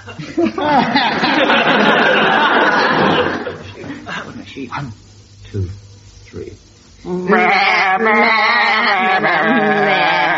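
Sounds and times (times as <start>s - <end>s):
people chuckling: 0.0s - 4.5s, 9.0s - 10.3s
several people singing a melody in sheep-like bleats: 7.1s - 10.3s.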